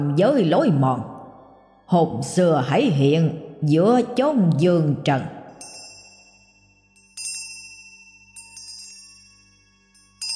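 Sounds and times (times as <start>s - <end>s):
speech: 0.0s - 1.1s, 1.9s - 5.4s
low steady hum: 0.0s - 10.3s
hanging bells around a corpse shaking and ringing: 5.6s - 10.3s.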